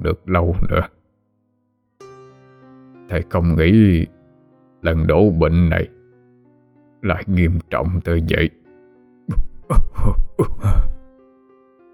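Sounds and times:
speech: 0.0 - 1.0, 3.1 - 4.2, 4.8 - 6.0, 7.0 - 8.6, 9.3 - 10.9
gravely ill old man coughing hoarsely: 9.3 - 11.1.

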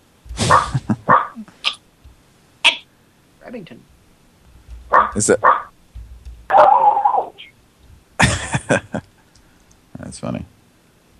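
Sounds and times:
laughter: 0.4 - 1.1, 8.2 - 9.1
dog barking: 0.5 - 1.4, 4.9 - 5.7, 6.5 - 7.3
dog yelping: 0.5 - 1.8, 4.9 - 5.7, 6.5 - 7.5
speech: 5.2 - 5.7, 8.7 - 9.0.

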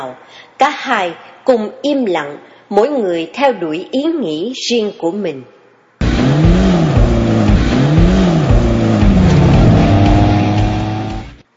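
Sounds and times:
speech: 0.0 - 5.6
engines of a convoy of cars driving along the roads of Vientiane: 6.0 - 11.4.

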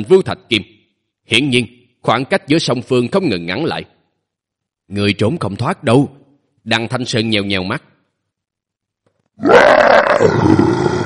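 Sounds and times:
speech: 0.0 - 4.0, 4.9 - 7.9, 9.4 - 11.0
six-legged beast roaring excitedly: 9.4 - 11.0.

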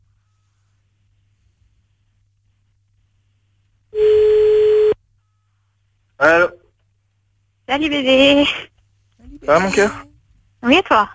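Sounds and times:
telephone ringback tone as a call is placed: 4.0 - 5.4
speech: 7.7 - 8.7, 9.4 - 10.1, 10.6 - 11.1.

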